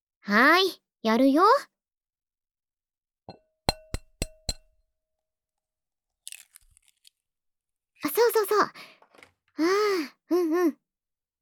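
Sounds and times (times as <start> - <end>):
speech: 0.2 - 1.7, 8.0 - 9.0, 9.6 - 10.8
egg cracked against a bowl's rim for cake batter: 6.2 - 7.2.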